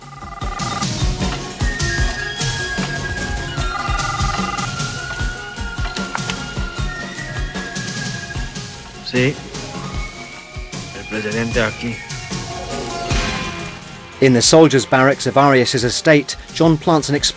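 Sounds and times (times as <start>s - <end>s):
landline telephone ringing in electronic bursts in the lounge of a villa: 0.0s - 0.9s, 2.4s - 6.4s
loud busy dramatic music with a steady pulsing beat: 0.0s - 17.3s
speech: 9.1s - 9.5s, 11.2s - 12.1s, 14.2s - 17.3s.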